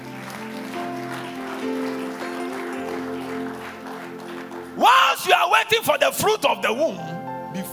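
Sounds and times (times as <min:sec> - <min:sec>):
audience clapping: 0:00.0 - 0:06.0
speech: 0:05.2 - 0:07.2.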